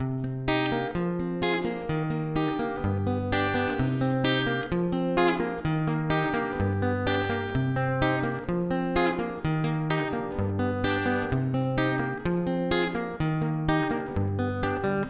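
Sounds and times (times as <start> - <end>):
guitar playing a verse: 0.0 - 15.0.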